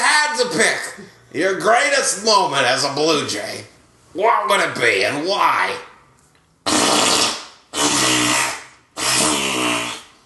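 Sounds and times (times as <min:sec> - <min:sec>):
speech: 0:00.4 - 0:05.9
wet fart: 0:06.6 - 0:10.1.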